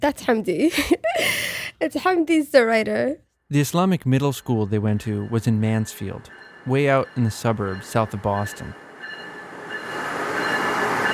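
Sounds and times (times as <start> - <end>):
speech: 0.0 - 8.8
commuter rail train rumbling along the tracks: 4.1 - 11.1
thin high metallic squeal from train wheels: 4.2 - 11.1.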